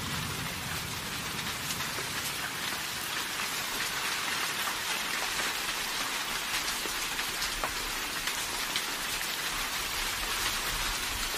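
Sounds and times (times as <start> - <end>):
steady dense rain hissing: 0.0 - 11.3
bright scattered drop ticks: 0.2 - 9.0.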